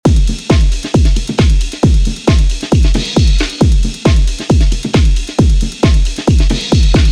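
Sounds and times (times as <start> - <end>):
full drum beat: 0.0 - 7.1.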